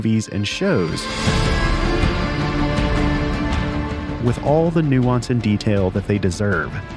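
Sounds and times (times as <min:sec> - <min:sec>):
speech: 0:00.0 - 0:02.1, 0:04.2 - 0:06.9
composed instrumental music track: 0:00.0 - 0:06.9.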